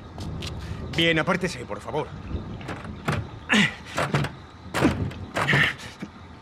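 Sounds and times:
speech: 1.0 - 2.5
locked bathroom door handle rattling: 2.5 - 5.8.

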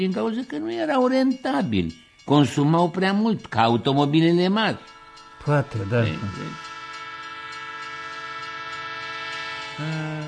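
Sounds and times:
speech: 0.0 - 6.7, 9.8 - 10.2
train rolling rail noise: 0.0 - 10.2
train horn chord: 4.8 - 10.2.

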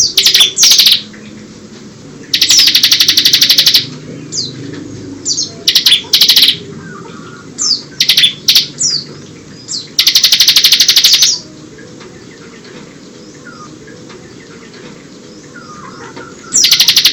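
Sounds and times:
Bar-winged prinia song with buzzy trills, whistles and chattering: 0.0 - 1.4, 2.2 - 17.1
steady low background hum: 0.0 - 17.1.

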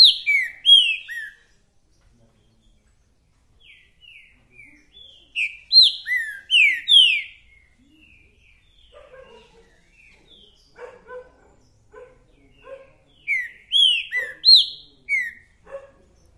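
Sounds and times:
male green-winged saltator singing downward-slurred whistles in territorial dispute: 0.0 - 1.5, 3.6 - 9.0, 13.2 - 15.5
green-winged saltator softer lower chirping notes: 0.0 - 16.3.

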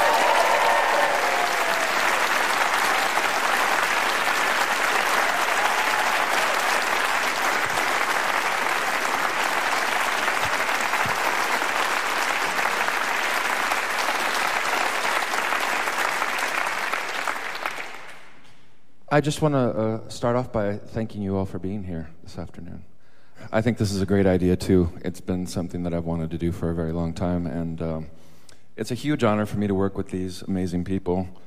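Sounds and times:
crowd applause at a live event: 0.0 - 18.4
speech: 19.2 - 22.9, 23.5 - 31.4.

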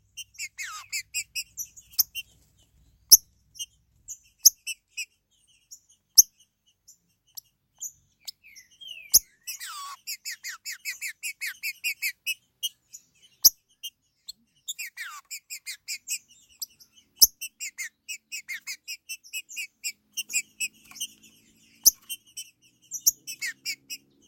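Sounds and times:
Green-winged saltator song of quick repeated bright chirps: 0.0 - 24.2.

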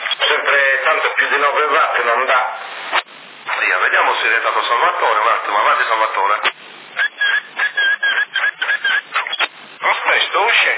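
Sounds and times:
speech: 0.5 - 2.7, 3.6 - 6.7, 10.4 - 10.7
whistling on a CB radio channel carrier: 7.0 - 9.5.

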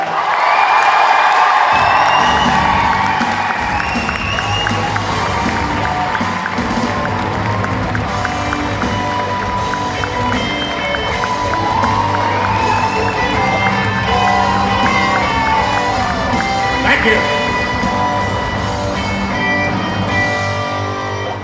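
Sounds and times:
audience applauding and cheering at an inauguration ceremony: 0.0 - 21.4
whistle-like tones in audience applause: 1.7 - 6.3, 10.0 - 16.0.

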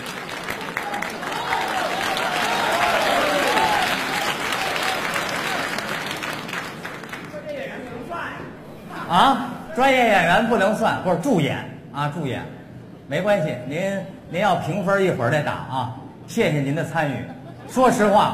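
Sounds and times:
audience applause at a stage comedy and variety competition: 0.0 - 7.7
speech: 9.1 - 18.3.

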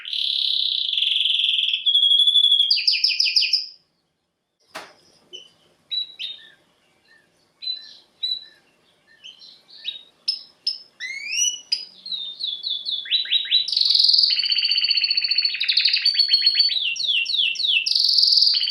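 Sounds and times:
male Belgian canary singing with chirps, fast trills and buzzy rolls: 0.0 - 18.6.

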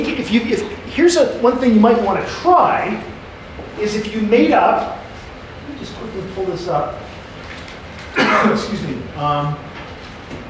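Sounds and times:
speech: 0.0 - 3.1, 3.8 - 5.0, 5.8 - 7.0, 8.2 - 9.7
person coughing: 8.1 - 8.7.

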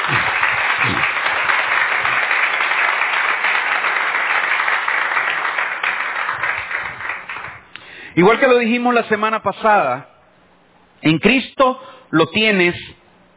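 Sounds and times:
church congregation applauding: 0.0 - 9.0
speech: 8.2 - 10.1, 11.0 - 12.9.

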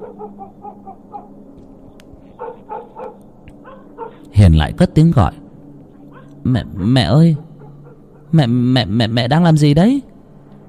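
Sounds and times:
black dog barking loudly: 0.0 - 1.4, 2.4 - 4.3, 6.1 - 6.4, 7.3 - 8.3
speech: 4.4 - 5.4, 6.4 - 7.4, 8.3 - 10.1.

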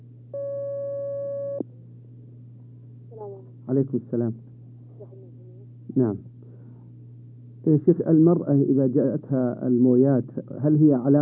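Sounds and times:
low constant hum: 0.0 - 11.1
telephone line tone as a caller comes onto a phone-in line: 0.4 - 1.6
speech: 3.7 - 4.5, 6.0 - 6.3, 7.6 - 11.1.

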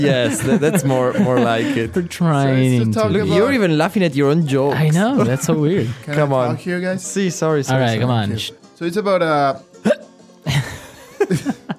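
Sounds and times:
laughter: 0.0 - 3.6, 5.0 - 6.3, 10.5 - 11.7
speech: 0.0 - 10.0, 11.3 - 11.6
person hiccuping: 9.8 - 10.1.

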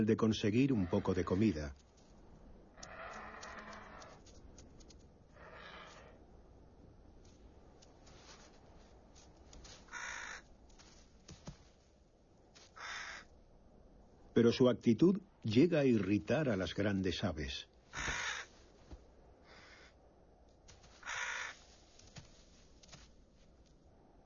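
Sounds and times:
speech: 0.0 - 1.9, 14.4 - 17.7
low steady hiss: 0.0 - 24.2
ravens cawing: 0.6 - 1.5, 2.6 - 6.5, 9.3 - 10.9, 12.6 - 13.4, 17.9 - 20.1, 20.8 - 22.2.

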